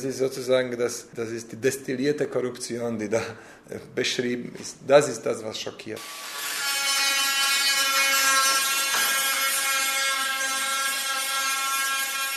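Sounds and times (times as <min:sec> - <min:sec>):
speech: 0:00.0 - 0:06.4
angle grinder sanding the body of a red classic car in a workshop: 0:06.0 - 0:12.3.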